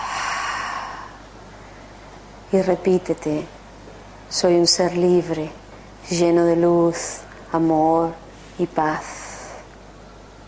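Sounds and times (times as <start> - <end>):
slow breath exhaled: 0.0 - 1.2
speech: 2.5 - 3.6, 4.3 - 9.2.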